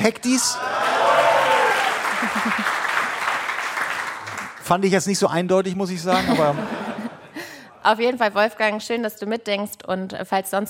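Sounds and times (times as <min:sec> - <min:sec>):
speech: 0:00.0 - 0:01.0, 0:02.2 - 0:02.8, 0:04.7 - 0:06.8, 0:07.8 - 0:10.6
crowd clapping and applauding: 0:00.4 - 0:04.8
laughter: 0:01.9 - 0:03.2, 0:06.0 - 0:07.8.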